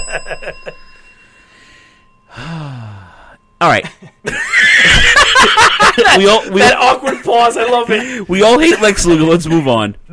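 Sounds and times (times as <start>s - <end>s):
bell ringing: 0.0s - 6.9s
breathy vocal sound: 1.2s - 3.5s
speech: 3.6s - 4.4s, 6.0s - 10.1s
laughter: 3.9s - 8.2s.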